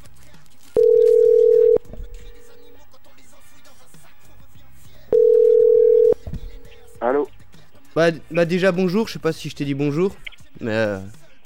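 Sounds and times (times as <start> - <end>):
electronic ringback tones of an outgoing telephone call: 0.8 - 2.8, 5.1 - 6.2
speech: 8.0 - 11.2.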